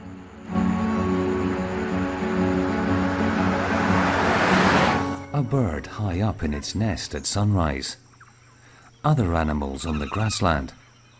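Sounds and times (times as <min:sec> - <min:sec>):
road noise hum from a van driving at night: 0:00.0 - 0:05.4
van engine droning while driving at night: 0:00.1 - 0:05.2
speech: 0:05.4 - 0:08.0, 0:09.0 - 0:10.8.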